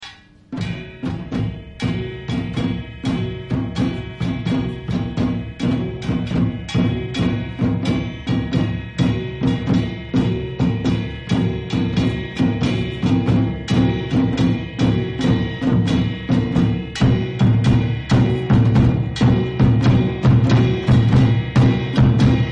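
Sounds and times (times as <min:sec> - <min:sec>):
Korean drums: 0:00.0 - 0:22.5.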